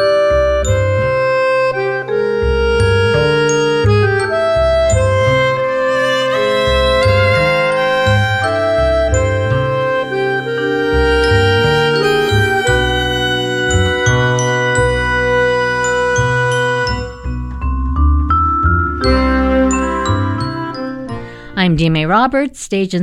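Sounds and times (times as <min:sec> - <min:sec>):
bright chiming bell-like instrumental melody: 0:00.0 - 0:21.6
steady pulsing bass line: 0:00.0 - 0:22.2
speech: 0:21.8 - 0:23.0.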